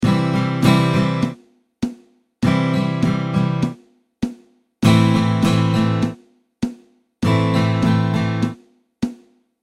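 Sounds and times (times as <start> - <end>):
strumming pattern: 0.0 - 1.4, 2.4 - 3.8, 4.8 - 6.2, 7.2 - 8.6.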